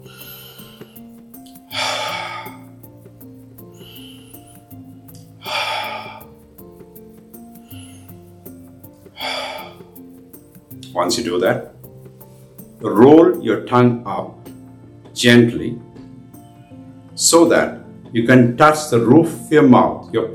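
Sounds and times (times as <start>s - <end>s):
deep breaths in through the nose and out through the mouth: 0.0s - 3.0s, 3.6s - 6.4s, 7.5s - 10.0s
soft sustained music: 0.0s - 20.3s
speech: 11.0s - 11.7s, 12.8s - 14.4s, 15.2s - 15.8s, 17.3s - 20.3s.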